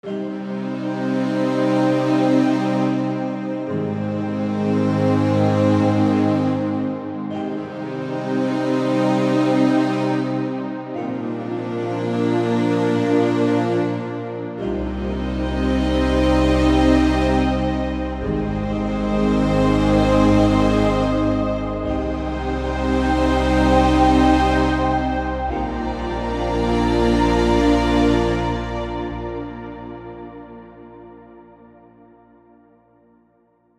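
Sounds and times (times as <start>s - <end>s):
strings playing an intro: 0.0s - 31.9s.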